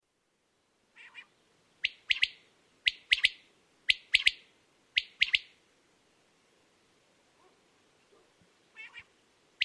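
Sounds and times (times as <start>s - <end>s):
common quail calling a sharp three-note phrase: 1.0s - 4.4s, 5.0s - 5.5s, 8.7s - 9.6s.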